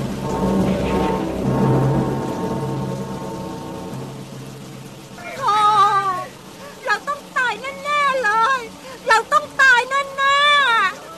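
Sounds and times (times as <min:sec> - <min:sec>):
rushing wind of a violent storm: 0:00.0 - 0:05.4
heavy rain of a violent storm: 0:00.0 - 0:11.1.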